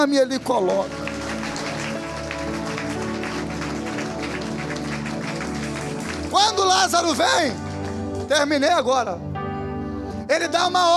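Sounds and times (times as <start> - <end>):
speech: 0.0 - 1.0, 6.3 - 7.6, 8.3 - 9.3, 10.3 - 10.9
crowd applauding: 0.4 - 8.6.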